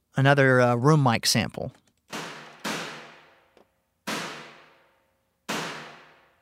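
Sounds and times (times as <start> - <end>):
speech: 0.2 - 1.8
snare drum hits drenched in mono room-mic reverb: 2.2 - 3.3, 4.1 - 4.8, 5.5 - 6.3.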